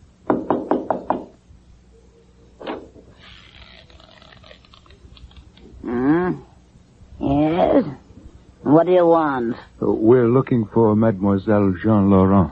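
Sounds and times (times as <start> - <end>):
quick firm knocking on a door: 0.2 - 1.4
brief creaking wavering sound: 3.1 - 6.0
speech: 8.8 - 12.4.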